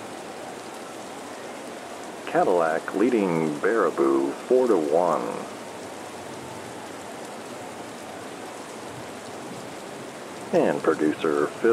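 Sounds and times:
light rain pattering on surfaces at a field during a rain delay: 0.0 - 11.7
speech: 2.3 - 5.6, 10.5 - 11.7.

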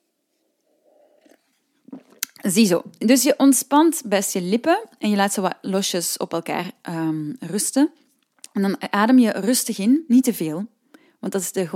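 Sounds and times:
person sipping hot tea: 0.4 - 2.5
gulp and swallow: 0.7 - 2.5
speech: 2.4 - 8.0, 8.6 - 11.7.

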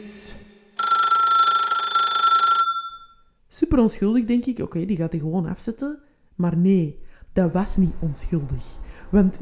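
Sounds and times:
old-fashioned telephone bell mobile phone ringtone: 0.8 - 3.3
speech: 3.7 - 9.3.

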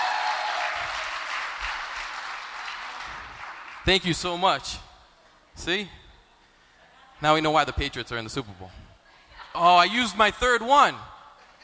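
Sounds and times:
audience applause: 0.0 - 3.9
speech: 3.8 - 4.9, 5.6 - 6.0, 7.2 - 8.8, 9.5 - 11.1.

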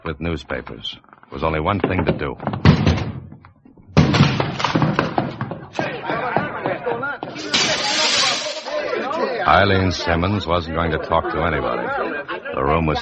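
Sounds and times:
speech: 0.1 - 3.1, 9.5 - 13.0
flat door smashed open: 4.0 - 5.2, 7.4 - 8.8
laughter: 5.6 - 13.0
window glass breaking and scattering: 7.4 - 8.8.

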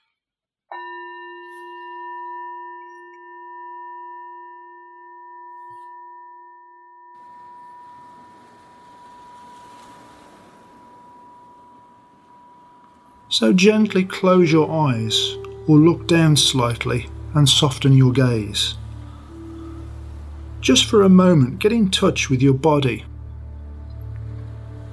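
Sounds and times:
meditation chime ringing: 0.7 - 24.9
soft hiss: 7.2 - 24.9
speech: 13.3 - 18.8, 20.7 - 23.1.

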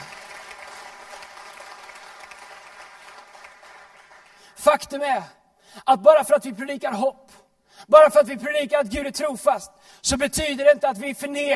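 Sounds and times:
large audience applause: 0.0 - 4.5
speech: 4.6 - 11.5.

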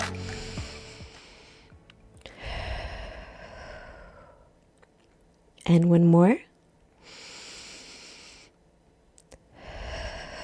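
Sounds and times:
deep breath: 0.0 - 4.6, 7.0 - 8.6, 9.5 - 10.4
speech: 5.7 - 6.5.

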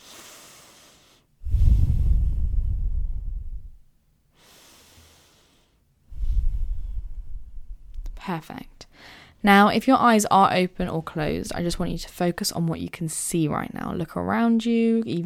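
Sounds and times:
group taking deep breaths together: 0.0 - 3.8, 4.4 - 7.7, 8.9 - 9.4
speech: 8.3 - 15.2.

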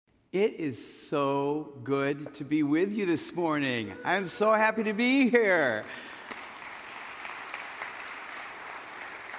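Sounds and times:
speech: 0.3 - 6.1
crowd applauding: 5.8 - 9.3.

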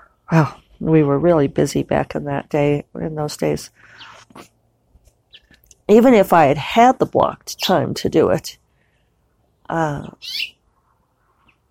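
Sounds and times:
speech: 0.3 - 4.5, 5.9 - 8.6, 9.7 - 10.6
finch chirping near its nest: 5.3 - 5.6, 10.0 - 10.6.

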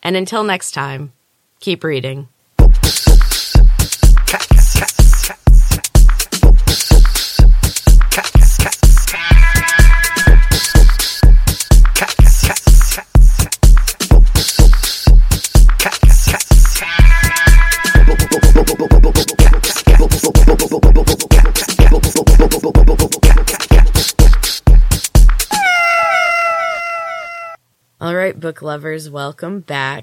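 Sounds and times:
speech: 0.1 - 2.4, 28.4 - 30.0
loud upbeat outro music with driving beat and bright melodic layers: 2.6 - 25.5.

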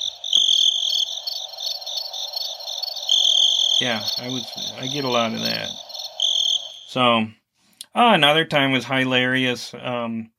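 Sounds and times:
crickets chirping: 0.0 - 7.2
speech: 3.8 - 5.9, 6.9 - 10.3.

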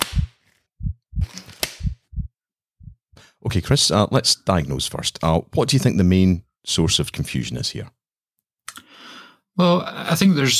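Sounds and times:
sharp latex-like snap of gloves snapped on: 0.0 - 0.4, 1.6 - 2.0
soft low thumps of dry handling: 0.0 - 3.1
speech: 3.4 - 8.0, 9.6 - 10.5.

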